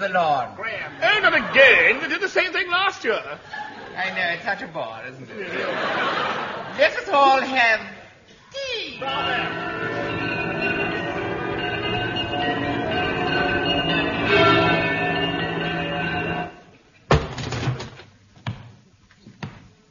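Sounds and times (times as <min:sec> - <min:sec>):
speech: 0:00.0 - 0:07.9, 0:09.0 - 0:09.7
laughter: 0:03.4 - 0:04.4, 0:05.3 - 0:07.6
bells ringing: 0:09.0 - 0:16.6.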